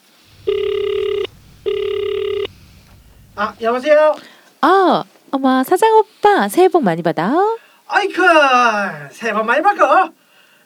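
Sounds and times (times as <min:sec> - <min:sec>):
faint low hum: 0:00.0 - 0:04.2
electronic ringback tones on an outgoing phone call: 0:00.4 - 0:02.5
speech: 0:03.4 - 0:10.2.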